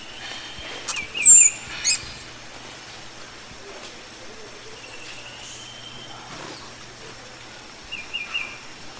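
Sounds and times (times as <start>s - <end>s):
violet-bellied hummingbird Damophila julie calling: 0.0s - 2.5s, 4.6s - 6.8s, 7.8s - 8.7s
faint constant hiss: 0.0s - 8.9s.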